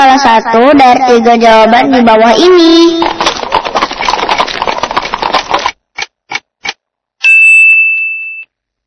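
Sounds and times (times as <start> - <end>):
speech: 0.2 - 3.2
horse-drawn carriage clip-clopping over a rumbling roll: 2.8 - 5.8
bright sustained chime-like tone: 7.2 - 8.6.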